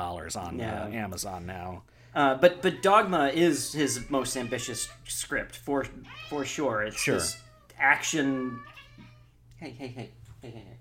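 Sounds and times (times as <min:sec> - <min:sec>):
speech: 0:00.0 - 0:08.8, 0:09.6 - 0:10.8
cats yowling and screeching in a scuffle: 0:02.6 - 0:09.3.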